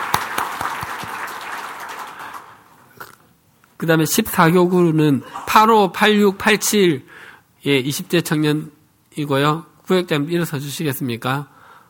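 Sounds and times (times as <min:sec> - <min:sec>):
church audience applauding: 0:00.0 - 0:02.7
speech: 0:03.8 - 0:11.5.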